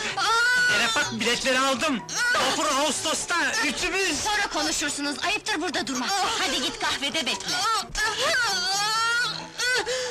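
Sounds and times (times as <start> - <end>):
woman screaming and wailing while in labor giving birth: 0.1 - 1.0, 2.1 - 2.9, 7.4 - 10.0
speech: 1.0 - 8.6.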